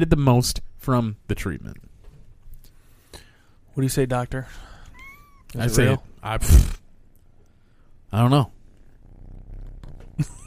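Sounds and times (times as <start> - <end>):
speech: 0.0 - 1.9, 3.8 - 4.7, 5.5 - 6.8, 8.1 - 8.6, 10.2 - 10.4
cat purring: 8.4 - 10.4.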